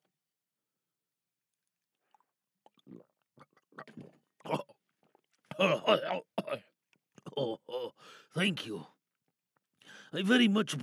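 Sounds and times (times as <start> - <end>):
water poured into mouth and gulped down: 1.9 - 7.9
speech: 2.8 - 4.6, 5.6 - 6.3, 8.4 - 8.9, 10.1 - 10.8.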